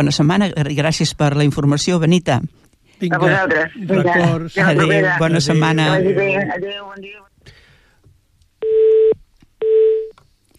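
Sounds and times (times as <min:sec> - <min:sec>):
speech: 0:00.0 - 0:07.6
telephone line beeps from a dropped call: 0:08.6 - 0:10.1.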